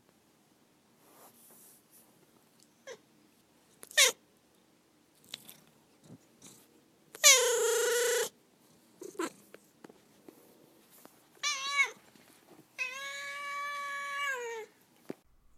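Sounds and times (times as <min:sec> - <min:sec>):
neutered male cat meowing and yowling: 0:03.9 - 0:04.2, 0:07.2 - 0:08.3, 0:11.4 - 0:12.0, 0:12.8 - 0:14.7.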